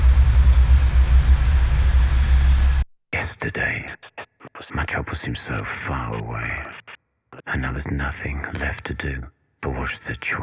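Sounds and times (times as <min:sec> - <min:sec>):
bus air brakes hissing: 0:00.0 - 0:02.8
bus engine idling with low throbbing pulse: 0:00.0 - 0:02.8
speech: 0:03.4 - 0:10.4.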